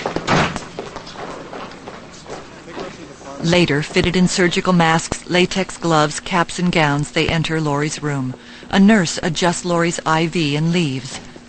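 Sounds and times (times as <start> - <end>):
door banging open: 0.0 - 0.7
hurried footsteps: 0.0 - 5.2
speech: 3.4 - 11.2.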